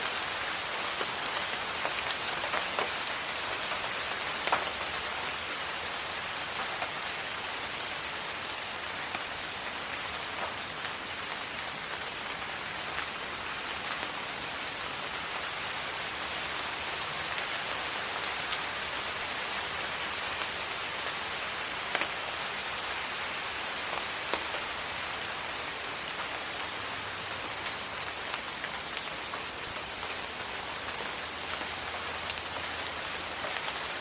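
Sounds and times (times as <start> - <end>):
light rain drizzling outside: 0.0 - 33.9.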